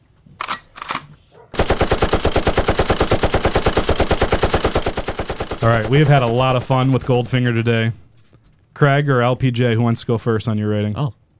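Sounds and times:
machine gun fire: 1.5 - 7.7
speech: 5.6 - 8.0, 8.8 - 11.2.

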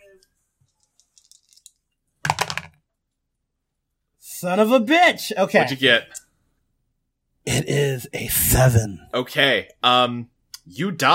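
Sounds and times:
dice clattering and tumbling across a dice tray: 0.9 - 2.8
speech: 4.4 - 6.2, 7.6 - 11.1.

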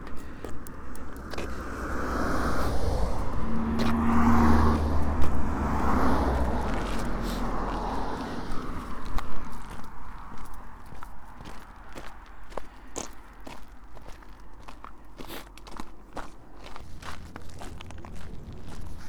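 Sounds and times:
cars swishing past on a busy road: 0.0 - 19.0
continuous engine rumble of roadside traffic: 0.0 - 19.0.

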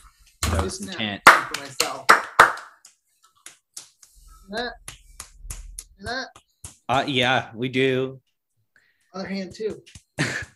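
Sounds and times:
hands clapping: 0.4 - 4.2, 4.8 - 6.8, 9.8 - 10.5
speech: 0.6 - 2.3, 4.5 - 4.8, 6.0 - 8.2, 9.2 - 10.4.

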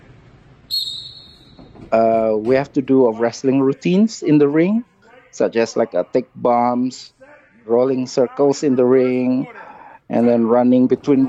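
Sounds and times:
shrill whistle blast to start a wrestling training drill: 0.7 - 1.7
speech: 1.9 - 11.2.

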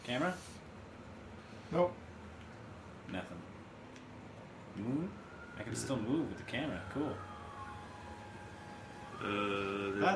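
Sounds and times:
speech: 0.1 - 0.6, 1.7 - 2.0, 3.1 - 3.5, 4.8 - 7.3, 9.2 - 10.1
droning siren tone in a video game: 4.3 - 10.1.

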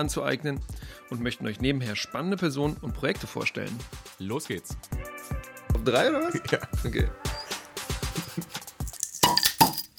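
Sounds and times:
speech: 0.0 - 7.3
glasses clinking in a toast: 7.4 - 9.9.

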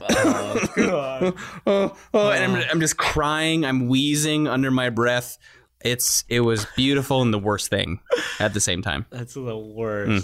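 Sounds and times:
person making forced throaty coughs to mask laughter: 0.0 - 1.2
speech: 0.2 - 10.2.

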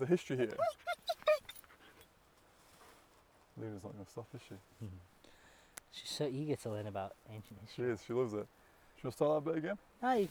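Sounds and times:
speech: 0.0 - 1.0, 3.6 - 5.1, 5.9 - 10.3
dog on a hill giving high-pitched yelping barks: 0.6 - 1.6.

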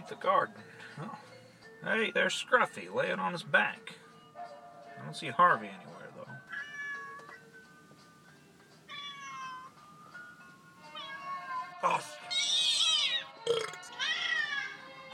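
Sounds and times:
speech: 0.1 - 4.0, 5.0 - 6.0
cat meowing in strained rising cries: 6.5 - 7.3, 8.9 - 9.8, 10.8 - 14.8
belching burp: 13.4 - 13.9
loud gulp: 13.5 - 13.8.

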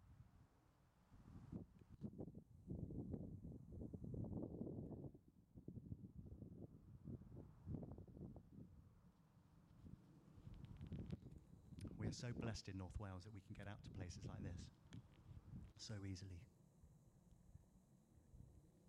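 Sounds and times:
wind gusts buffeting the microphone outdoors in North Wales: 1.3 - 8.8, 9.8 - 15.8
speech: 12.1 - 15.0, 15.8 - 16.6.

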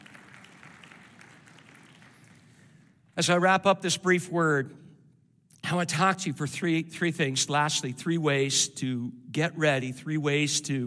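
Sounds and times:
church audience clapping at a worship service: 0.0 - 3.2
speech: 3.2 - 4.8, 5.7 - 10.8.

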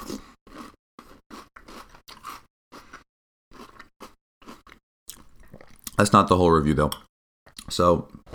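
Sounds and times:
dry cereal being chewed: 0.0 - 6.0
speech: 6.0 - 7.1, 7.7 - 8.3.

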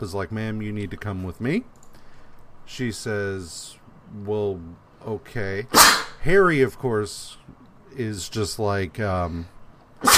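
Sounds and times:
speech: 0.0 - 1.9, 2.7 - 10.1
sneeze: 5.7 - 6.2, 10.0 - 10.1.

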